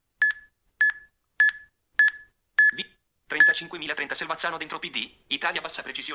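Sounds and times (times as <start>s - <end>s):
smartphone electronic chirps while sending a message: 0.2s - 2.8s
speech: 3.3s - 6.1s.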